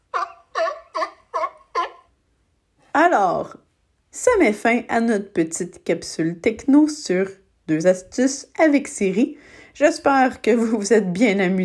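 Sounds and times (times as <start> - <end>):
true seal barking: 0.0 - 2.1
speech: 3.0 - 11.6.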